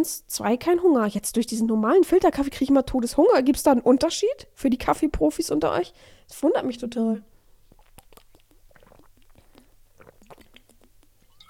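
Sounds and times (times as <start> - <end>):
speech: 0.0 - 7.3
stomach rumbling with gurgles and bubbling pops: 7.6 - 11.4.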